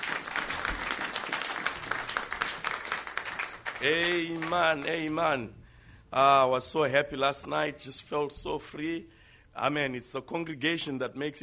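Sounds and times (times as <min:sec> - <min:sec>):
audience clapping: 0:00.0 - 0:05.4
speech: 0:03.8 - 0:11.4.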